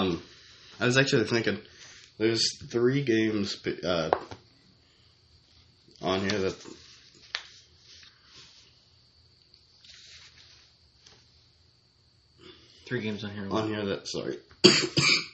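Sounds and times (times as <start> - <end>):
speech: 0.0 - 4.4, 6.0 - 6.8, 12.9 - 15.3
soft breathy sounds: 0.2 - 0.9, 1.6 - 2.2, 4.5 - 5.7, 6.7 - 9.0, 12.4 - 12.9
man coughing in rough throaty bursts: 14.6 - 15.3.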